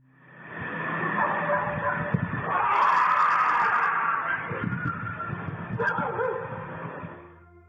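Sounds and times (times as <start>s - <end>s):
several dogs barking and yipping: 1.2s - 5.1s, 5.7s - 6.6s.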